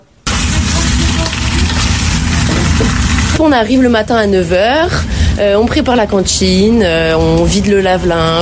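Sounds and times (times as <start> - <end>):
potatoes browning in a frying pan in a kitchen: 0.3 - 4.3
speech: 3.4 - 8.3.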